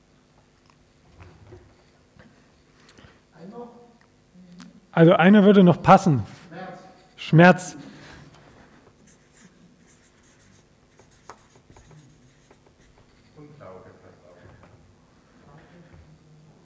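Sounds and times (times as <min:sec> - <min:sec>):
speech: 0:05.0 - 0:06.4, 0:07.3 - 0:07.8
pen scratching across paper while notes are written: 0:09.0 - 0:13.4.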